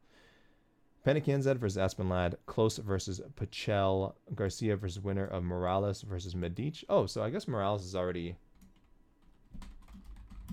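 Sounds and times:
speech: 1.0s - 8.4s
fingers typing on a computer keyboard: 8.5s - 10.5s.

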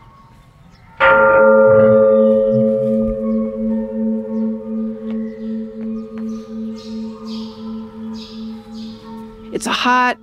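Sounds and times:
faint birds chirping: 0.0s - 1.0s, 1.8s - 10.2s
Catholic parish church bell ringing on a hot sunny day: 1.0s - 10.2s.

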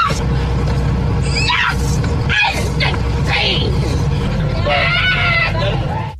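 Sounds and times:
steady airplane cabin rumble: 0.0s - 6.1s
woman screaming aboard an airplane: 1.3s - 2.6s, 4.6s - 6.1s.

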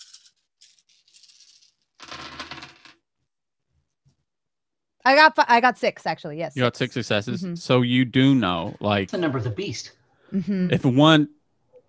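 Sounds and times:
small dice rattling and clattering across a hard surface: 0.0s - 3.0s
speech: 5.0s - 11.4s.

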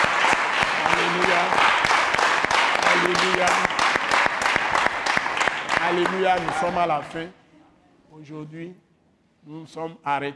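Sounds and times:
church congregation clapping at the close of a French-language worship service: 0.0s - 7.2s
speech: 6.0s - 7.4s, 8.2s - 8.8s, 9.4s - 10.3s.

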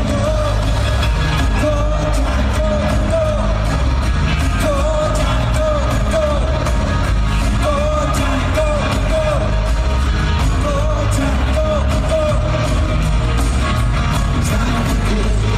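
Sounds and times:
excited crowd cheering and yelling: 0.0s - 15.5s
loud live rock music with drums and guitars: 0.0s - 15.5s
wavering vocal line: 0.0s - 15.5s.

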